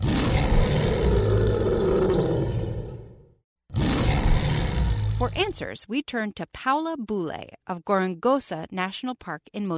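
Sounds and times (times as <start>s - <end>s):
lion roaring: 0.0s - 5.3s
speech: 5.2s - 9.7s.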